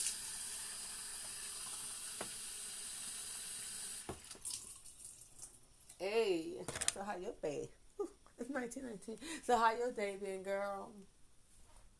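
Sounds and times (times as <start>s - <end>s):
water running from a sink tap: 0.0s - 5.4s
speech: 6.0s - 11.2s.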